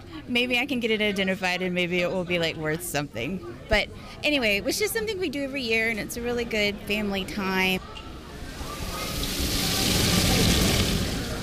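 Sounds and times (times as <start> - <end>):
speech: 0.3 - 8.0
running water rushing while sifting rocks for gems: 8.3 - 11.4.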